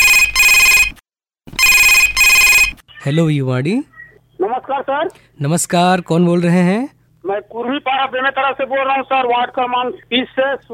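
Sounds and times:
telephone ringing for an incoming call: 0.0 - 2.8
speech: 3.0 - 4.0, 4.7 - 10.7.

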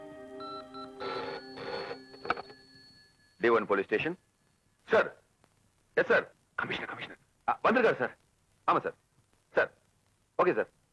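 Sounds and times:
telephone ringing at a police station: 0.0 - 4.2
faint steady tone: 0.0 - 10.9
speech: 3.4 - 4.2, 4.9 - 5.2, 6.0 - 6.3, 7.7 - 9.0, 10.4 - 10.8.

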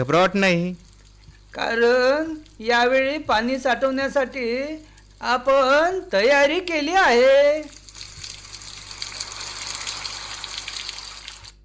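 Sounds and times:
speech: 0.0 - 0.8, 1.5 - 7.8
rain falling over a farm with a farm pond: 7.8 - 11.5.

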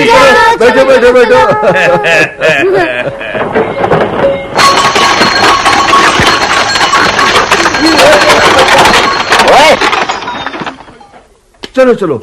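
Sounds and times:
speech: 0.6 - 3.3, 11.8 - 12.2
laughter: 0.6 - 3.6
bullock cart carrying children rolling toward a railway station: 3.2 - 11.3.

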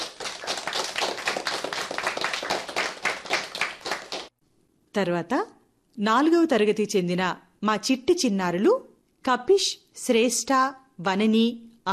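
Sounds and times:
audience clapping for singers at a school event: 0.0 - 4.4
speech: 5.0 - 11.9.

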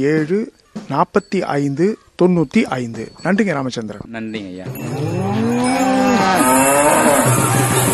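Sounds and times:
speech: 0.0 - 5.4
native-breed cattle mooing on a farm: 4.8 - 7.8.

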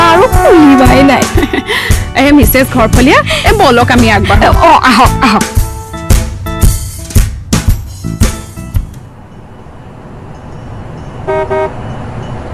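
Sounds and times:
approaching car honking its horn: 0.0 - 2.1, 11.2 - 11.8
rumbling road noise: 0.0 - 5.5, 7.8 - 12.5
speech: 1.5 - 5.6
quieter car engine passing: 8.9 - 12.5.

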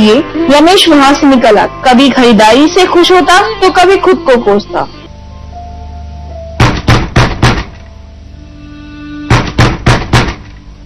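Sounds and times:
speech: 0.0 - 5.0
firm knocking on a door: 6.6 - 7.8, 9.3 - 10.5.

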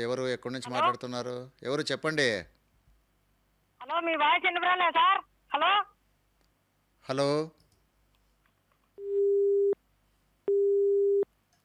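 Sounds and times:
speech: 0.0 - 2.6, 3.8 - 5.9, 7.0 - 7.6
telephone busy tone after a call disconnects: 9.0 - 9.8, 10.5 - 11.2.

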